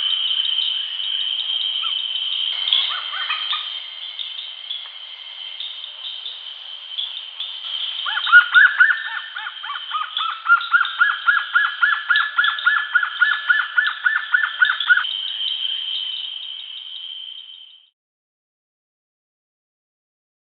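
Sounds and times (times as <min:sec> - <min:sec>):
high insect drone: 0:00.0 - 0:17.9
Bushy-crested hornbill yelping calls: 0:01.8 - 0:03.8, 0:08.0 - 0:15.1.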